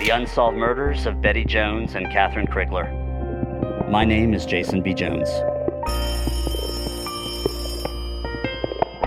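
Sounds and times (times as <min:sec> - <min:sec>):
speech: 0:00.1 - 0:03.0, 0:03.9 - 0:05.5
old-fashioned telephone bell ringing: 0:05.9 - 0:08.9.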